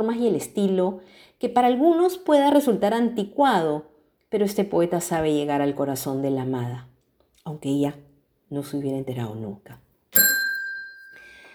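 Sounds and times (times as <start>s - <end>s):
speech: 0.0s - 10.2s
bright metallic bell ringing: 10.2s - 11.5s.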